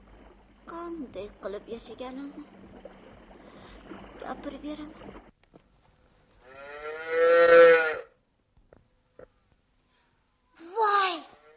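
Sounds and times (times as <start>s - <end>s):
speech: 1.0s - 2.8s, 3.9s - 5.3s
calf mooing: 6.4s - 8.1s.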